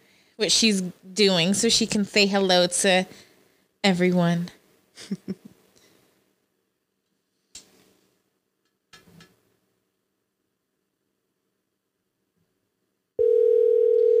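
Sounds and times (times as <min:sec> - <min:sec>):
speech: 0:00.4 - 0:03.2, 0:03.8 - 0:05.4
electronic ringback tone of an outgoing phone call: 0:13.2 - 0:14.1.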